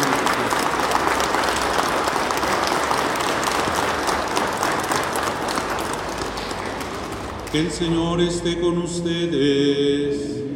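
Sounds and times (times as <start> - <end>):
large audience applause: 0.0 - 8.2
speech: 7.5 - 10.4.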